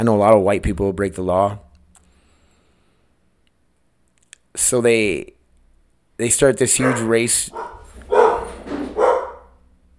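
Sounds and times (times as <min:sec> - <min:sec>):
speech: 0:00.0 - 0:01.6, 0:04.6 - 0:05.4, 0:06.2 - 0:07.8
dogs barking at mail carrier: 0:06.7 - 0:09.6.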